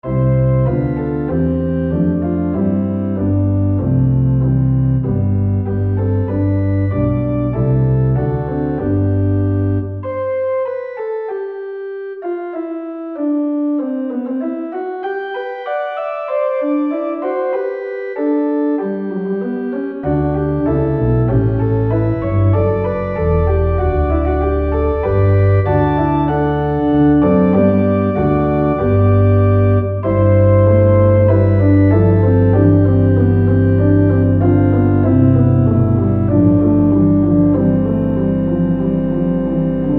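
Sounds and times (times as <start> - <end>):
fughetta piece: 0.0 - 39.9.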